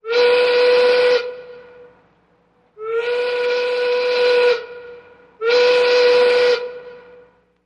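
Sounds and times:
freight train horn: 0:00.0 - 0:02.0, 0:02.8 - 0:07.5.

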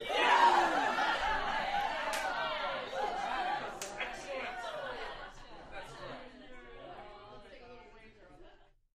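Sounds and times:
rowdy crowd yelling in a small interior: 0:00.0 - 0:06.0
laughter: 0:00.0 - 0:08.8.

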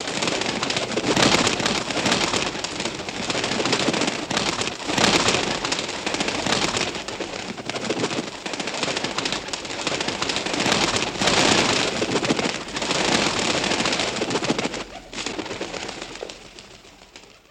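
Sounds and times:
bird wings flapping: 0:00.0 - 0:17.5.

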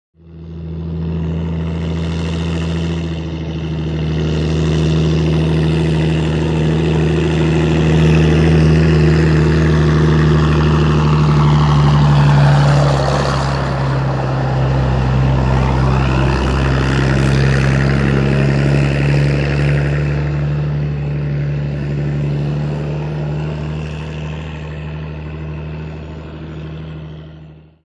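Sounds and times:
excavator earthmover passing by: 0:00.2 - 0:27.8.

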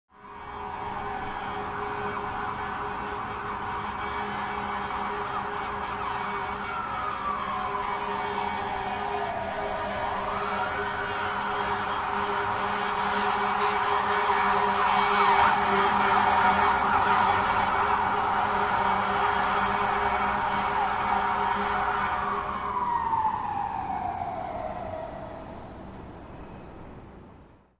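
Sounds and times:
firetruck or ambulance siren: 0:00.1 - 0:27.7.

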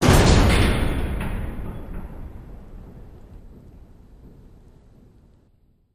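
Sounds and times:
metal gate slamming: 0:00.0 - 0:04.6.

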